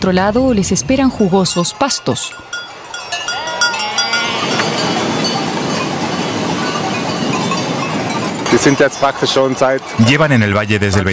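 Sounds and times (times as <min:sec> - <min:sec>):
speech: 0:00.0 - 0:02.8, 0:08.6 - 0:11.1
crowd murmur: 0:00.8 - 0:10.4
bells clinking: 0:01.0 - 0:11.1
large flock of sheep bleating while being gathered in a village: 0:03.5 - 0:04.8.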